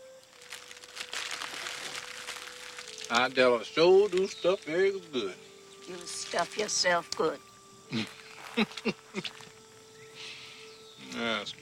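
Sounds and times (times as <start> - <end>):
faint steady tone: 0.0 - 11.6
wax paper wrapping crumpled up by hand: 0.2 - 5.2, 5.8 - 6.8
speech: 3.1 - 9.5, 11.1 - 11.6.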